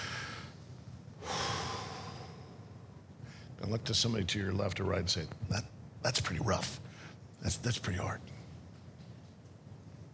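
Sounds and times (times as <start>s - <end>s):
audience taking a deep breath and exhaling: 0.0s - 0.6s, 1.2s - 3.5s
speech: 3.6s - 8.4s.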